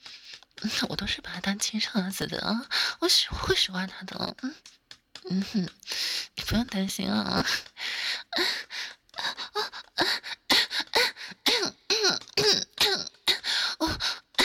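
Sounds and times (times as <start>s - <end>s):
speech: 0.6s - 7.7s, 8.4s - 8.6s
gasping breaths between coughs: 5.8s - 6.4s, 7.5s - 14.4s
person coughing in a long fit: 11.5s - 13.2s.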